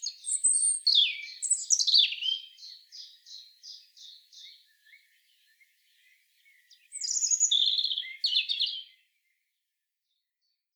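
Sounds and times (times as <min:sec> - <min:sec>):
European robin singing Erithacus rubecula: 0:00.0 - 0:09.0.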